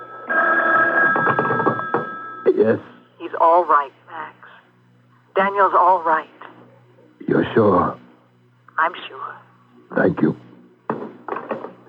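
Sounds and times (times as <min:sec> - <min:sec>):
telephone ringing with a steady buzzing bell tone: 0:00.0 - 0:02.5
speech: 0:02.6 - 0:04.0, 0:05.4 - 0:06.4, 0:07.3 - 0:08.0, 0:08.8 - 0:10.4.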